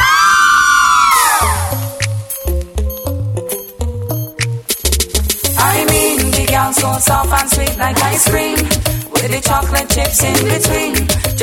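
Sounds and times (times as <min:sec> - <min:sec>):
crowd of girls screaming: 0:00.0 - 0:01.9
thumping bass beat: 0:01.4 - 0:11.4
speech: 0:07.2 - 0:11.4.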